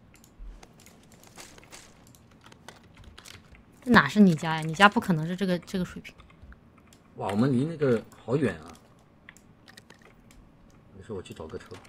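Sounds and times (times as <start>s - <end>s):
quick uneven crunchy footsteps: 0.5s - 3.3s
speech: 3.9s - 6.2s, 7.2s - 8.8s, 11.1s - 11.8s.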